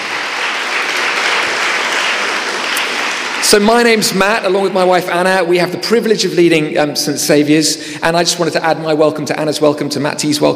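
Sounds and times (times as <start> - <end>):
crowd applauding: 0.0 - 4.2
speech: 3.5 - 10.5.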